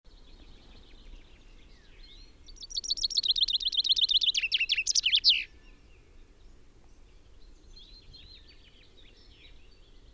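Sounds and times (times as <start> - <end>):
common chaffinch Fringilla coelebs singing: 2.5 - 5.5.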